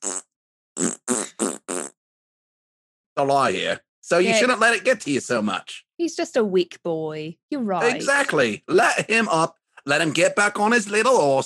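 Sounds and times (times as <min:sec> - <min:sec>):
fart noises: 0:00.0 - 0:02.0
speech: 0:03.2 - 0:11.4.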